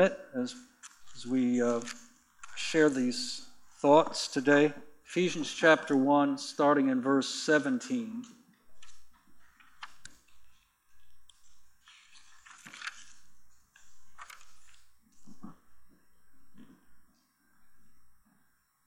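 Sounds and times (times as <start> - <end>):
speech: 0.0 - 2.0, 2.6 - 8.4
Bible pages being turned: 0.8 - 3.2, 8.7 - 15.6.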